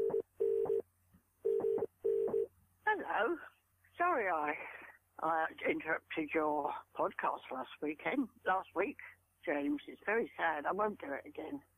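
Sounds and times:
telephone line tone: 0.0s - 0.8s, 1.4s - 2.5s
speech: 4.2s - 11.7s.

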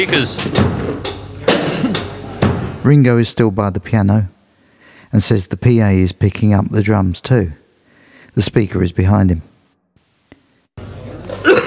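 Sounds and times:
speech: 0.0s - 2.0s, 2.8s - 4.4s, 5.1s - 7.6s, 8.4s - 9.5s
room noise: 0.0s - 11.6s
rough hacking smoker's cough: 1.5s - 2.2s, 11.4s - 11.6s.

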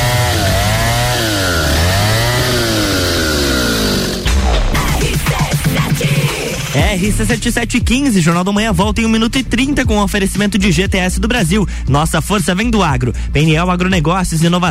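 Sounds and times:
chainsaw blade cutting wood: 0.0s - 5.4s
chainsaw engine revving: 0.0s - 6.8s
speech: 7.0s - 14.6s.

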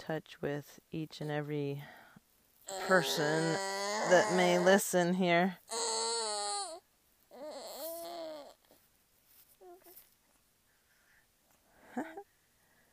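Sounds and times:
speech: 0.0s - 2.0s, 2.7s - 5.9s
baby fussing while struggling with a pacifier: 2.6s - 10.1s.

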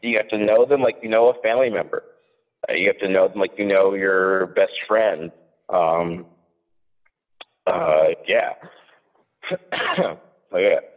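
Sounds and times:
speech: 0.0s - 6.3s, 7.7s - 8.8s, 9.4s - 10.9s
throat clearing: 8.6s - 10.2s
person coughing after drinking Coca-Cola too fast: 9.5s - 10.2s.

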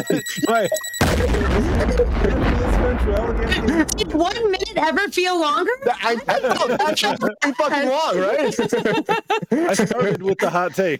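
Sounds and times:
laughter: 0.0s - 5.0s, 5.7s - 10.9s
warbling swooping electronic tone: 0.0s - 5.0s
speech: 0.0s - 10.9s
explosion sound effect: 1.0s - 4.4s.

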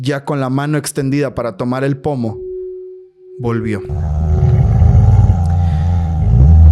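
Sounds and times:
speech: 0.0s - 2.4s, 3.4s - 4.4s
deep droning hum with low rumbling layers: 3.8s - 6.6s.

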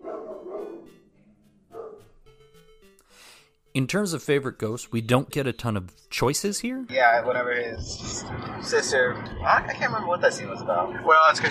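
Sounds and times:
dogs barking: 0.0s - 0.9s, 1.7s - 2.1s
speech: 3.8s - 11.4s.

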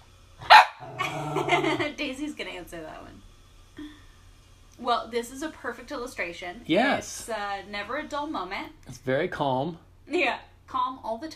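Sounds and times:
dog barking: 0.4s - 1.8s
speech: 1.4s - 4.0s, 4.8s - 11.3s.

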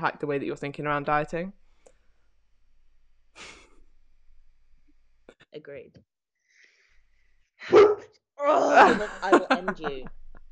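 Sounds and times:
speech: 0.0s - 1.6s, 5.5s - 6.1s, 7.6s - 10.2s
dog barking: 7.7s - 8.1s
laughter: 8.6s - 10.1s.

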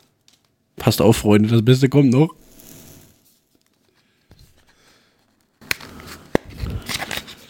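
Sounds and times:
speech: 0.8s - 2.4s
cigarette pack being opened: 5.3s - 7.4s.

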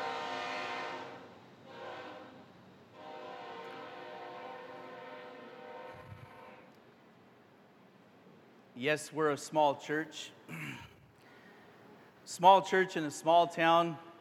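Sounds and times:
sustained tonal horn-like layer of a train: 0.0s - 2.4s, 3.0s - 6.7s
train passing through a small town: 0.0s - 6.7s
speech: 8.8s - 10.9s, 12.3s - 14.1s.

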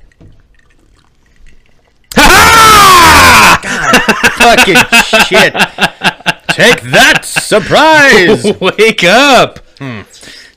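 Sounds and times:
person screaming loudly into microphone, distorted and harsh: 2.1s - 3.6s
laughter: 3.6s - 8.8s
speech: 4.4s - 5.9s, 6.6s - 10.4s.

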